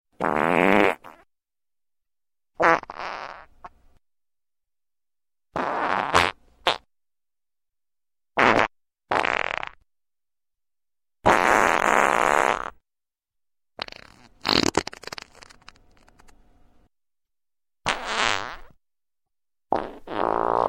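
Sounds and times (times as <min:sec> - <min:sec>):
fart noises: 0:00.2 - 0:01.3, 0:02.6 - 0:03.5, 0:05.5 - 0:06.9, 0:08.4 - 0:09.8, 0:11.2 - 0:12.8, 0:13.8 - 0:16.3, 0:17.8 - 0:18.8, 0:19.7 - 0:20.6.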